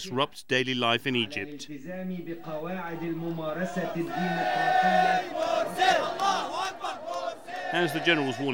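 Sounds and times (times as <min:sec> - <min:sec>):
speech: 0:00.0 - 0:06.8, 0:07.7 - 0:08.5
crowd of young men chanting and shouting in Tahrir Square Egypt: 0:02.2 - 0:08.5.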